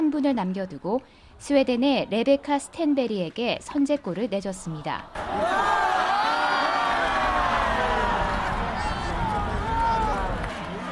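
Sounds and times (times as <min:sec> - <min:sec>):
speech: 0:00.1 - 0:05.8
large arena crowd chanting encouragement in unison: 0:05.1 - 0:10.8.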